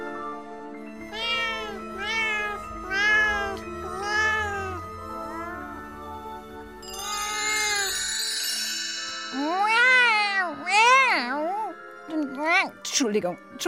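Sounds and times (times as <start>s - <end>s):
person imitating cat meows: 1.1s - 5.8s, 7.1s - 8.0s, 9.4s - 11.8s
bright shimmering tone: 6.8s - 9.8s
speech: 13.1s - 13.6s.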